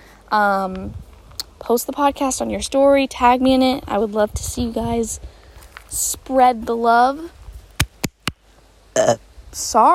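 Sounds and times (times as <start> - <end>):
speech: 0.3 - 5.3, 5.9 - 7.4, 9.0 - 9.9
short burp: 8.9 - 9.2.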